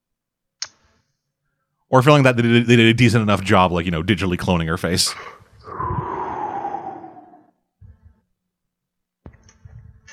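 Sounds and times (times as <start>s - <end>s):
speech: 1.9s - 6.0s
heavy breathing: 5.1s - 7.6s
stifled yawn: 5.1s - 7.6s.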